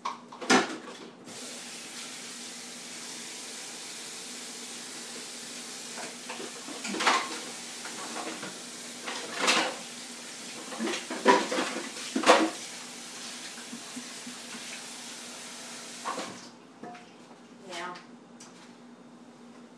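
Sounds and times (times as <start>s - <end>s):
water running as a mixing bowl is rinsed out: 1.3s - 16.6s.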